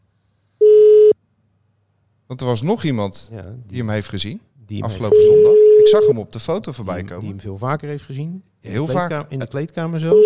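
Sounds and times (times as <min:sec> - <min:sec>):
telephone dialing beep: 0:00.6 - 0:01.2
speech: 0:02.3 - 0:10.2.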